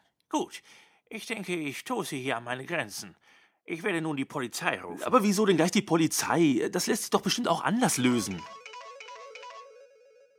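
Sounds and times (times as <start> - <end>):
speech: 0.3 - 8.7
telephone ringing with a trilling electronic chirp: 8.1 - 10.2.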